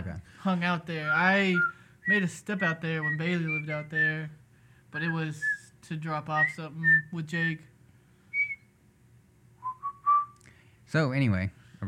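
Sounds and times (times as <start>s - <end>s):
speech: 0.4s - 7.7s, 10.9s - 11.8s
person whistling a short tune: 1.1s - 4.2s, 8.3s - 8.7s, 9.6s - 10.4s.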